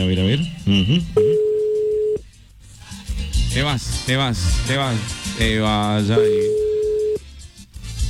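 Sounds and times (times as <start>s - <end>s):
speech: 0.0s - 1.2s, 3.6s - 6.6s
telephone ringback tone: 1.2s - 2.2s, 6.2s - 7.2s.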